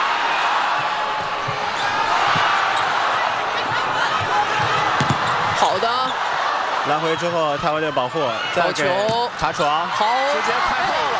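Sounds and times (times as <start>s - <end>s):
crowd roaring at a volleyball match: 0.0s - 11.1s
volleyball bouncing before a serve: 0.8s - 2.9s, 4.2s - 5.6s
speech: 6.9s - 11.1s.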